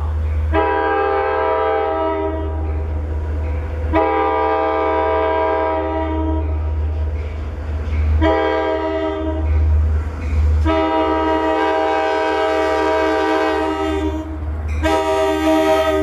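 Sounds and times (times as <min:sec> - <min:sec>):
LIRR train rounding the curve into a station: 0:00.0 - 0:16.0
LIRR train K5LA horn: 0:00.5 - 0:02.7, 0:03.9 - 0:06.5, 0:08.2 - 0:09.6, 0:10.6 - 0:16.0.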